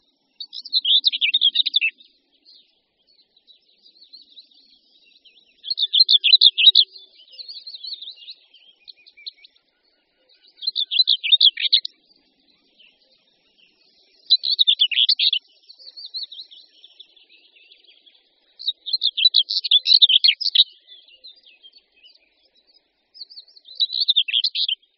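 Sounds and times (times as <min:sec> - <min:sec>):
common whitethroat singing: 0:00.0 - 0:24.9.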